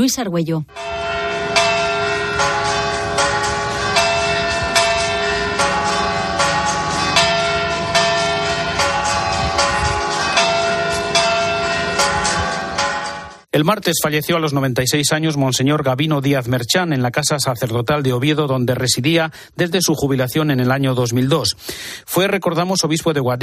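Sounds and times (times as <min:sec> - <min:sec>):
speech: 0:00.0 - 0:01.0, 0:13.5 - 0:23.4
cathedral church bells pealing: 0:00.7 - 0:13.5.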